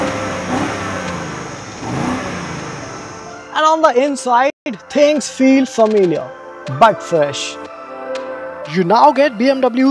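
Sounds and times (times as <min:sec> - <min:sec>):
BMW car engine revving through integrated exhaust tips: 0:00.0 - 0:03.4
speech: 0:03.7 - 0:07.7, 0:08.7 - 0:09.9.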